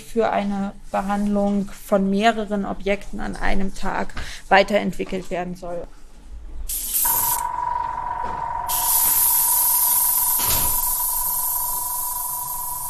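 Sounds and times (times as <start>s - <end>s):
speech: 0.1s - 6.0s
spray gun spraying nanocellulose onto paper sheet: 6.7s - 7.4s, 8.7s - 12.8s
faint steady whine: 7.0s - 12.8s.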